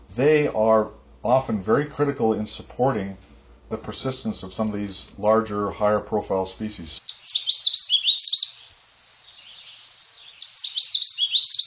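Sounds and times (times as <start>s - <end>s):
speech: 0.2s - 7.1s
Canada warbler singing: 6.6s - 11.6s.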